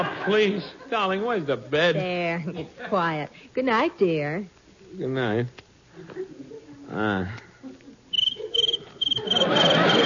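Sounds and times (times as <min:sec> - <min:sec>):
laughter: 0:00.0 - 0:01.2, 0:07.6 - 0:10.0
speech: 0:00.0 - 0:07.4
cricket chirping: 0:08.1 - 0:10.0.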